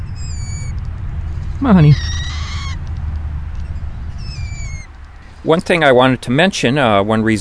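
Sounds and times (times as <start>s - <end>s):
young grosbeaks giving begging calls while being fed: 0.0s - 0.8s, 1.6s - 2.9s, 3.7s - 5.0s
low rumble: 0.0s - 5.5s
speech: 1.6s - 2.2s, 5.4s - 7.3s.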